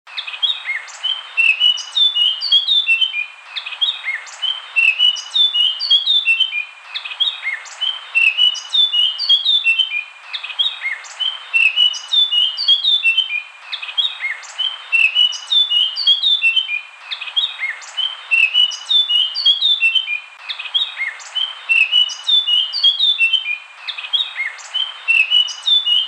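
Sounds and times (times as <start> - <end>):
Eurasian blackcap singing: 0.1 - 26.0.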